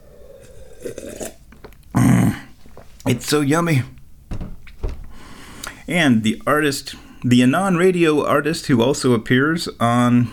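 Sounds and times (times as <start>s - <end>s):
person sipping and slurping hot tea: 0.0s - 2.4s
person gulping hot tea as it is swallowed: 0.3s - 3.0s
speech: 3.1s - 4.0s, 5.9s - 10.3s.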